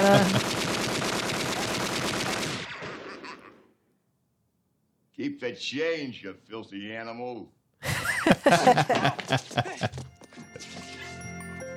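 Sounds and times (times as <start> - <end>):
speech: 0.0 - 0.5, 5.4 - 9.9
laughter: 0.0 - 0.6, 3.0 - 3.6, 7.8 - 11.3
fireworks bangs from a movie playing on a TV: 0.0 - 3.7
gunfire from a movie playing on a TV: 0.0 - 3.7.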